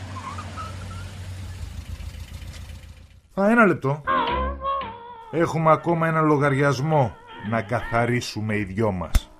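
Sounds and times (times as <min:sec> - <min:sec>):
car engine humming: 0:00.0 - 0:03.3
speech: 0:03.4 - 0:04.2, 0:05.3 - 0:09.2.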